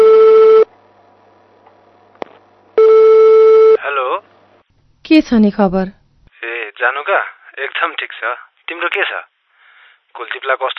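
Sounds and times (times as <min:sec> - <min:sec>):
telephone tone heard in a handset while dialing: 0:00.0 - 0:00.7, 0:02.8 - 0:03.8
speech: 0:05.2 - 0:06.0, 0:06.8 - 0:09.3, 0:10.1 - 0:10.7.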